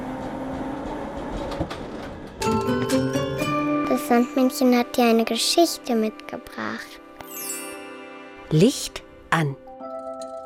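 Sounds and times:
tram rolling on rails: 0.0s - 3.4s
speech: 1.6s - 1.9s, 4.0s - 7.0s, 8.5s - 9.6s.

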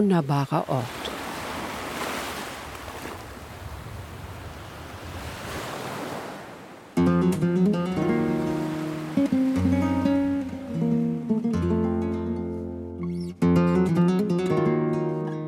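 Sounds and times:
speech: 0.0s - 1.0s
rough sea waves breaking in a bay: 0.0s - 11.6s
music: 7.0s - 15.4s.

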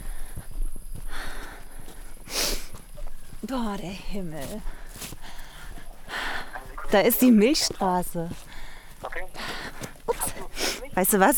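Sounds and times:
breathy rustle: 0.0s - 7.7s, 8.3s - 11.0s
footsteps crunching outdoors at a brisk walking pace: 0.0s - 11.3s
speech: 3.4s - 4.8s, 6.9s - 8.5s, 11.0s - 11.3s.

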